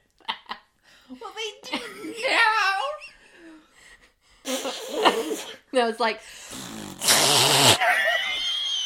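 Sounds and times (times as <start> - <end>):
speech: 1.1 - 3.0, 5.0 - 6.6, 7.3 - 8.2
loud buzzing fart: 6.5 - 8.0
laughter: 7.8 - 8.8.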